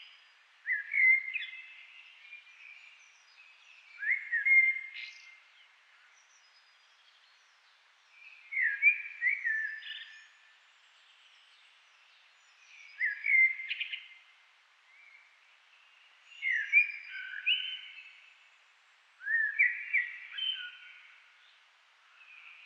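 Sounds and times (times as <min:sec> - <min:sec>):
common blackbird Turdus merula singing: 0:00.0 - 0:07.6, 0:08.2 - 0:10.4, 0:12.4 - 0:14.2, 0:16.0 - 0:18.3, 0:19.2 - 0:22.6.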